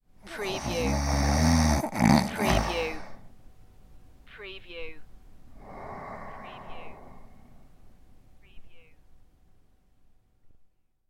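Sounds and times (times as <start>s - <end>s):
man snoring: 0.3s - 3.2s, 5.6s - 7.4s.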